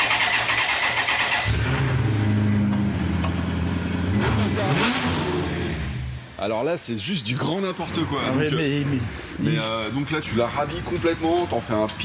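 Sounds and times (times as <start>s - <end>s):
Maserati car engine cranking, starting and idling: 0.0s - 6.4s
speech: 6.4s - 12.0s.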